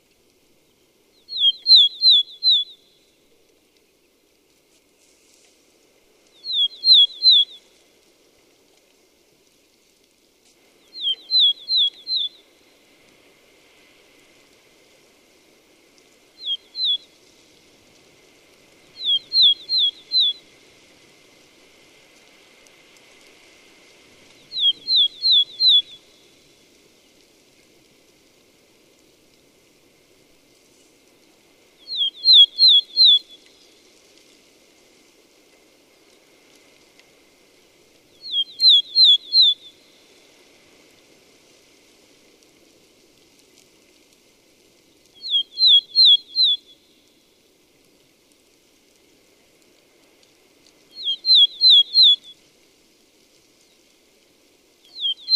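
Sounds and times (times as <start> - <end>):
red-flanked bluetail Tarsiger cyanurus: 1.2 - 3.0, 6.4 - 7.6, 10.9 - 12.5, 16.4 - 17.1, 18.9 - 20.5, 24.4 - 26.2, 31.8 - 33.5, 38.2 - 39.9, 45.2 - 47.0, 50.9 - 52.3, 54.9 - 55.3.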